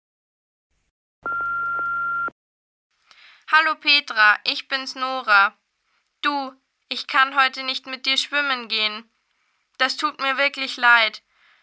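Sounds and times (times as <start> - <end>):
telephone beep before voicemail message: 1.2 - 2.4
speech: 3.5 - 5.6, 6.2 - 9.1, 9.8 - 11.3.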